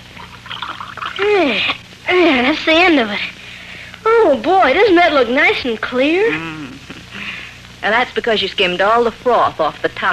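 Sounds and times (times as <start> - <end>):
liquid poured from kettle into glasses: 0.0 - 1.7
speech: 1.2 - 3.4, 4.2 - 6.6, 7.8 - 10.1.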